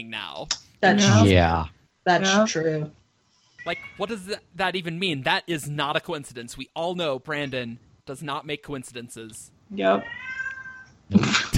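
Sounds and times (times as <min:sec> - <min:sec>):
speech: 0:00.0 - 0:03.0, 0:03.6 - 0:10.4
cat meowing: 0:09.9 - 0:10.9.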